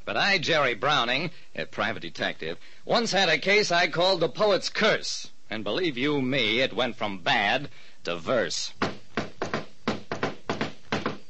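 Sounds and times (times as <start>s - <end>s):
speech: 0.1s - 9.0s
knocking on a door: 8.8s - 11.2s.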